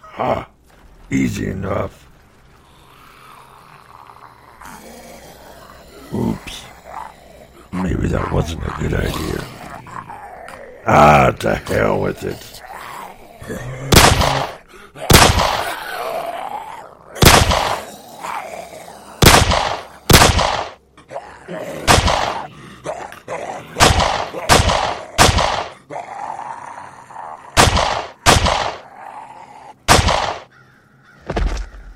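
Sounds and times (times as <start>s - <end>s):
speech: 0.2s - 2.1s, 7.8s - 9.6s, 10.8s - 12.5s, 13.5s - 13.8s
video game gunfire: 13.9s - 15.8s, 17.2s - 17.9s, 19.2s - 20.8s, 21.8s - 22.4s, 23.8s - 25.8s, 27.6s - 28.8s, 29.9s - 30.5s.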